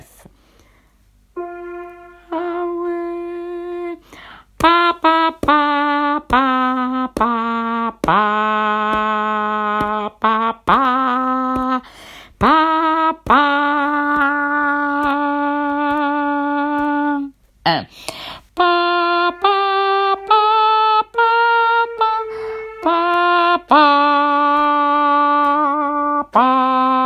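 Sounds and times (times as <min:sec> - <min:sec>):
alto singing a lullaby: 0:01.3 - 0:27.0.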